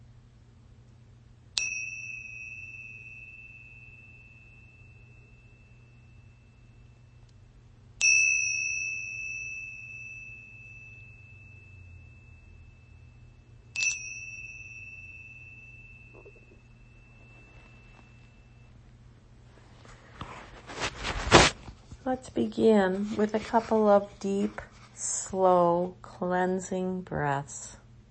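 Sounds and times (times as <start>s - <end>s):
low steady hum: 0.0s - 28.1s
meditation bell struck, clear metallic tone: 1.6s - 18.9s
faint rustle: 16.4s - 25.2s
speech: 22.1s - 27.8s.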